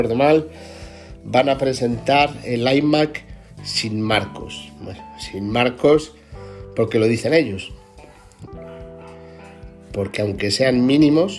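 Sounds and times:
speech: 0.0 - 6.2, 6.8 - 7.8, 9.9 - 11.3
dog barking muffled and distant: 7.5 - 10.4.

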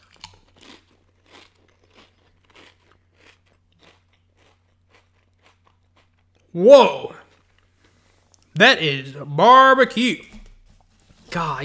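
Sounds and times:
baby back rib flavored potato chips being bitten and crunched: 0.0 - 7.9
speech: 6.5 - 7.1, 8.6 - 10.3, 11.3 - 11.6.

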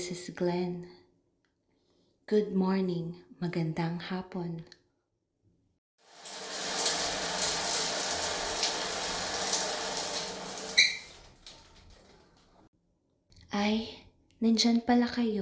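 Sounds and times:
speech: 0.0 - 1.0, 2.3 - 4.8, 13.5 - 15.4
shower water running: 6.0 - 12.7.

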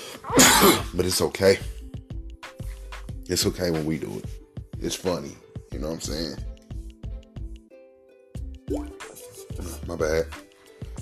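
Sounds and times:
speech: 0.6 - 1.8, 3.3 - 6.5, 9.9 - 10.4
person sipping and gulping water: 8.7 - 9.0.

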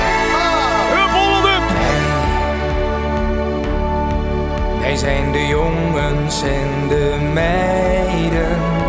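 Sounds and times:
loud festive Dutch orange football anthem-style song with full band: 0.0 - 8.8
sung vocal line sliding between notes: 0.2 - 2.8, 4.8 - 8.8.

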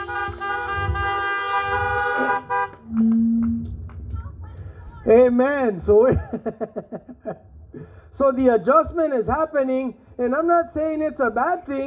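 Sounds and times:
several car horns honking: 0.0 - 3.8
faint outdoor noise: 0.0 - 11.8
speech: 5.0 - 11.8
laughter: 6.0 - 7.5.

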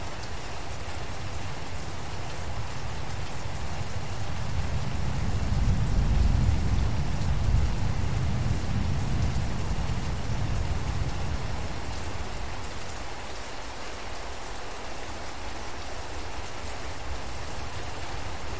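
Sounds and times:
rain in a forest: 0.0 - 18.5
thunder in a forest: 4.7 - 11.1.

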